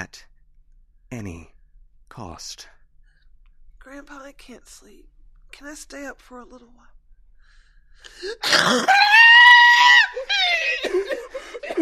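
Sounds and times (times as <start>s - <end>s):
speech: 1.1s - 1.5s, 2.1s - 2.8s, 3.8s - 7.0s, 8.0s - 9.8s
breathy gasps: 7.4s - 8.4s
loud piercing scream: 8.4s - 10.9s
wavering cries: 8.4s - 11.8s.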